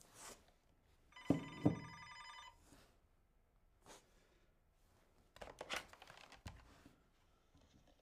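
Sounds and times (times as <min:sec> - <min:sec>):
old-style telephone bell ringing at a police station: 0:01.2 - 0:02.6.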